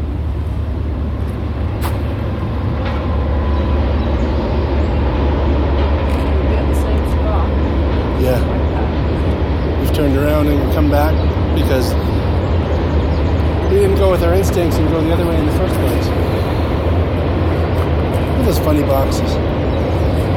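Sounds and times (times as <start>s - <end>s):
large train rolling past: 0.0s - 20.3s
voices murmuring: 5.0s - 20.3s.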